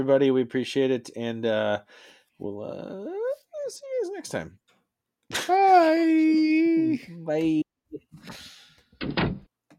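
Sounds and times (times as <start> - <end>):
speech: 0.0 - 4.6, 5.3 - 7.6, 8.2 - 9.3
door swinging and shutting with a creak, thud and rattle: 9.0 - 9.5.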